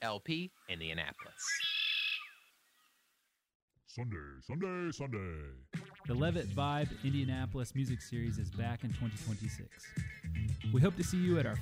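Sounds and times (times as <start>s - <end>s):
speech: 0.0s - 1.8s, 4.0s - 11.5s
red-winged blackbird giving a harsh buzzy call: 1.2s - 2.5s.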